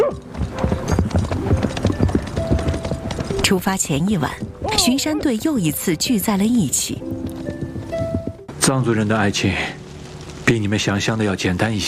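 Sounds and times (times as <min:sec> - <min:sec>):
horse hooves clip-clopping as a rider sets off: 0:00.0 - 0:10.6
speech: 0:03.5 - 0:07.2, 0:08.7 - 0:09.8, 0:10.5 - 0:11.8.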